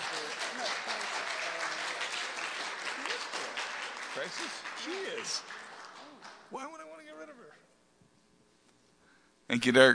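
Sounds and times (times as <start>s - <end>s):
audience clapping at a meeting: 0.0s - 7.0s
speech: 4.2s - 5.6s, 6.5s - 6.8s, 9.5s - 9.9s.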